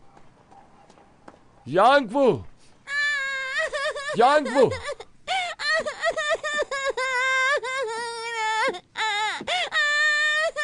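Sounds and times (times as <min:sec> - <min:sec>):
speech: 0:01.6 - 0:02.5, 0:04.2 - 0:04.9
child wailing and sobbing with gasping breaths: 0:02.9 - 0:10.6.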